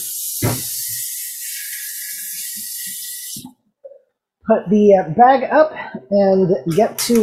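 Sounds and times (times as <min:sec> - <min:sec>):
tap water running while washing hands: 0:00.0 - 0:03.6
speech: 0:04.5 - 0:07.2.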